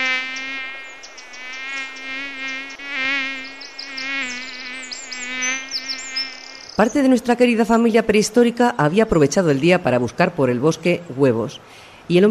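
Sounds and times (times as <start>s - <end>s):
flies buzzing: 0.0s - 6.9s
speech: 6.8s - 12.3s.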